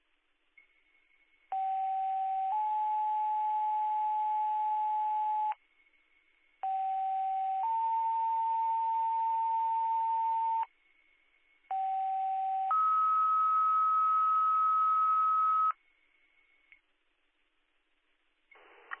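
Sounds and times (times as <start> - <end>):
faint constant whine: 0.0 - 18.9
two-tone EMS radio paging tones in a tone test: 1.5 - 5.6, 6.6 - 10.7, 11.7 - 15.8.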